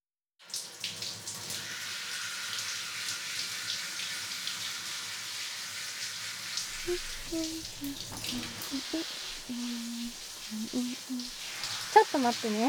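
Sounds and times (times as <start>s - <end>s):
water running from a shower sprayer into a washbasin at a beauty-treatment chair: 0.4s - 12.6s
faint tonal squeaks: 6.8s - 11.3s
speech: 6.9s - 12.6s.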